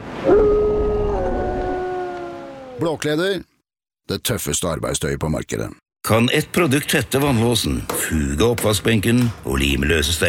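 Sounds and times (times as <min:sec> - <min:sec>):
dog howling: 0:00.2 - 0:02.8
speech: 0:02.8 - 0:03.5, 0:04.1 - 0:10.2.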